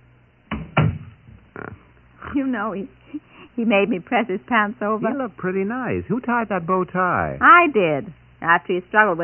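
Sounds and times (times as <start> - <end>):
door swinging shut with a solid thud: 0.5 - 1.4
speech: 2.4 - 9.2.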